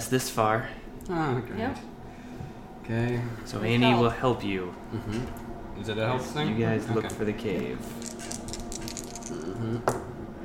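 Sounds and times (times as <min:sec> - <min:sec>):
speech: 0:00.1 - 0:01.9, 0:02.9 - 0:08.4, 0:09.4 - 0:10.0
dice rattling and clattering across a hard table: 0:08.0 - 0:09.5.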